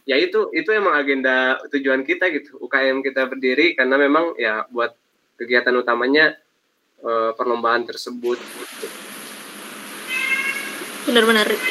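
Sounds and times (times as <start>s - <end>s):
faint steady hiss: 0.0s - 11.6s
speech: 0.1s - 6.4s, 7.0s - 9.2s, 11.1s - 11.6s
cat meowing: 10.1s - 11.6s.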